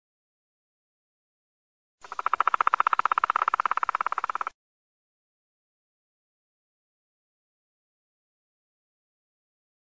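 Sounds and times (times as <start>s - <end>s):
black woodpecker call: 2.0s - 4.6s.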